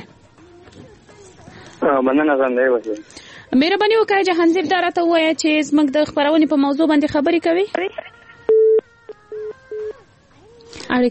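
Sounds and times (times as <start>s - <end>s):
speech: 1.8s - 8.1s
telephone busy signal after a disconnected call: 8.5s - 8.8s.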